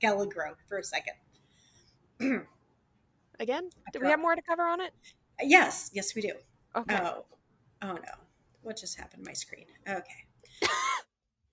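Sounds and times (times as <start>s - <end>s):
speech: 0.0s - 1.3s, 2.2s - 2.6s, 3.4s - 11.1s
person coughing: 2.2s - 2.6s, 10.6s - 11.1s.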